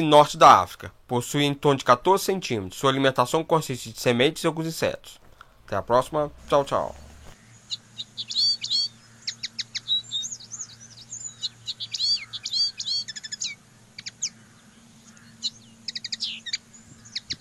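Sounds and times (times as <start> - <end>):
speech: 0.0 - 7.0
steady low hum: 5.3 - 17.4
common linnet twittering song: 6.7 - 17.4.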